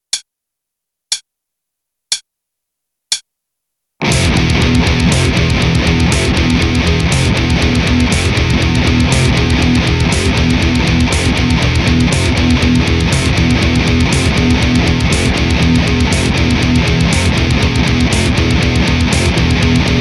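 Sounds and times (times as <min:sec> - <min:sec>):
heavy bass: 0:04.0 - 0:19.9.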